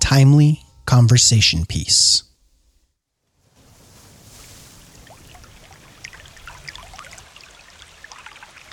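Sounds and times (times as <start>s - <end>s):
speech: 0.1s - 2.3s
babbling brook flowing water: 5.1s - 8.7s.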